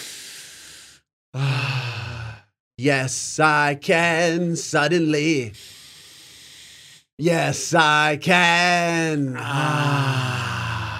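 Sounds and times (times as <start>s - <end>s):
deep breath with long airy inhale and sighing exhale: 0.0s - 2.5s, 5.6s - 7.1s, 9.6s - 10.9s
speech: 2.8s - 5.8s, 7.2s - 10.4s.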